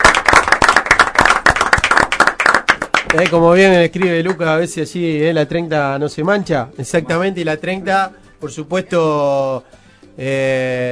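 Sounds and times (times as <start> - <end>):
applause from a small group before a farewell toast: 0.0 - 4.5
speech: 3.1 - 10.9.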